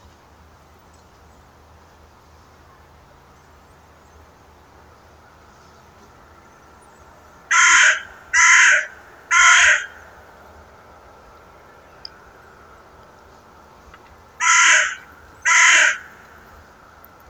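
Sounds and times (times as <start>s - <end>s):
Carrion crow Corvus corone cawing harshly: 7.5s - 10.2s, 14.4s - 16.4s.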